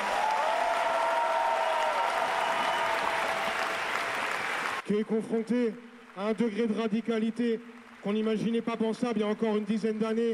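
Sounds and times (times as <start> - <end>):
audience applause for the high school student movement: 0.0 - 4.8
speech: 4.9 - 10.3.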